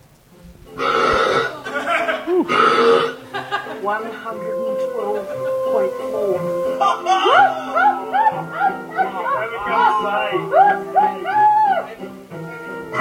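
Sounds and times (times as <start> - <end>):
extremely loud drawn-out burp: 0.8 - 1.6, 2.4 - 3.3
laughter: 0.9 - 12.2
excited voices reacting: 1.1 - 12.2
speech: 3.9 - 10.9.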